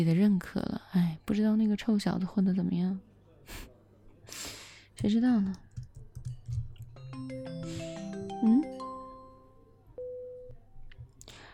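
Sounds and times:
speech: 0.0 - 3.7, 5.0 - 5.6
electronic telephone call tones beeping in stepped sequence: 7.6 - 10.7.

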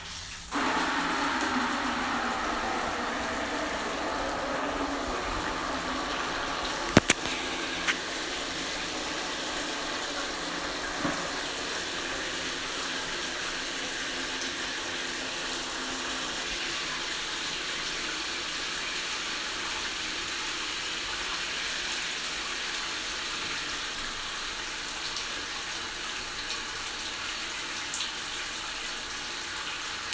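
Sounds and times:
cold water running from a tap while a bath is prepared: 0.5 - 30.1
brief clicks: 6.9 - 8.0.

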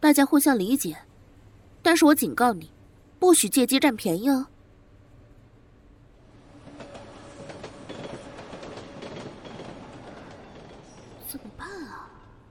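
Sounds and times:
speech: 0.1 - 1.1, 1.8 - 4.5
crowded subway train rumbling and rattling along the tracks: 6.1 - 12.5
sharp clacks of subway train over tracks: 6.4 - 11.4.

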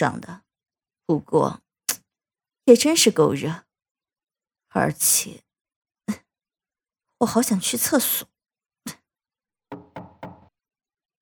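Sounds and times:
speech: 0.0 - 0.4, 1.1 - 1.6, 2.7 - 3.6, 4.7 - 5.4, 7.2 - 9.0
knocking on a door: 9.7 - 10.6.

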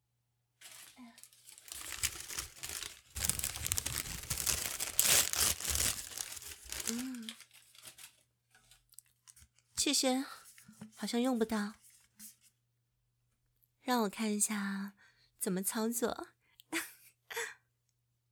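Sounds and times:
plastic packaging crinkling and tearing as a new item is unwrapped: 0.6 - 8.2
speech: 9.9 - 10.4, 11.0 - 11.8, 13.9 - 16.4.

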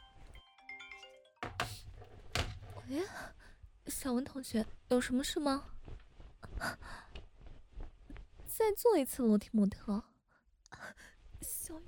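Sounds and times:
phone ringtone with bright electronic melody notes: 0.0 - 1.4
speech: 2.9 - 5.8, 6.6 - 7.1, 8.6 - 10.1, 10.7 - 11.8.

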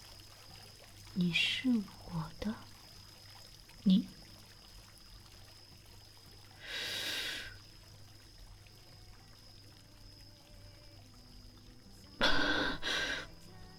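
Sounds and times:
speech: 1.2 - 2.7, 3.8 - 4.2
person gasping after holding breath: 12.2 - 13.3.

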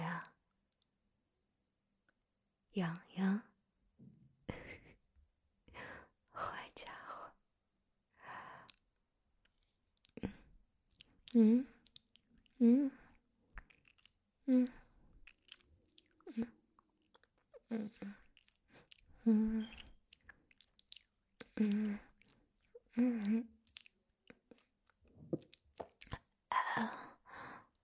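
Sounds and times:
speech: 2.8 - 4.2, 11.3 - 11.7, 12.6 - 13.0, 14.5 - 14.8, 16.4 - 16.6, 17.7 - 18.2, 19.2 - 19.8, 21.6 - 22.1, 23.0 - 23.6, 26.8 - 27.1
voice making wet mouth chewing and biting noises imitating eating fingers: 8.7 - 14.4, 15.0 - 26.4.

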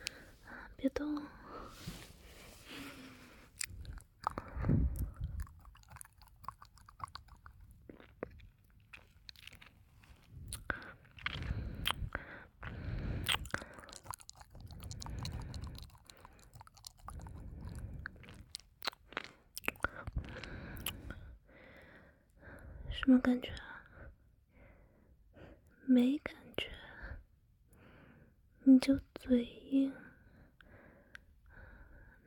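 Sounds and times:
speech: 0.9 - 1.9, 23.1 - 23.7, 26.0 - 26.2, 28.8 - 29.9
wet licking mouth noises: 3.6 - 9.7, 10.5 - 21.1.

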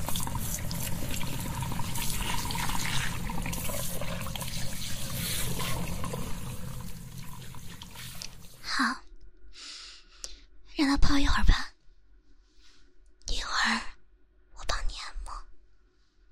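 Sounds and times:
hot water running from a tap into a hair-washing basin: 0.0 - 8.6
speech: 10.9 - 11.6.

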